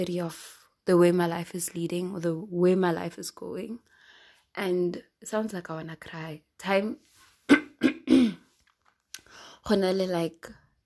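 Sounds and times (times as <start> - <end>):
speech: 0.0 - 3.9, 4.6 - 7.6, 9.7 - 10.6
person clearing throat with something caught in it: 7.5 - 8.4.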